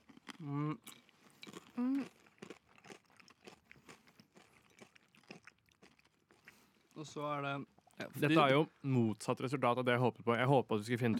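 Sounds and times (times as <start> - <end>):
crunchy chewing of a hard biscuit: 0.0 - 6.9
speech: 0.4 - 1.0, 7.0 - 11.1.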